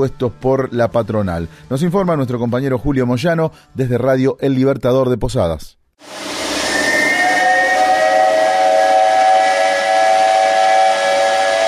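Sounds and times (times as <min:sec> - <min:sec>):
speech: 0:00.0 - 0:06.3
hissy rush: 0:06.0 - 0:11.6
steam whistle of a sneaker factory blowing: 0:06.0 - 0:11.6.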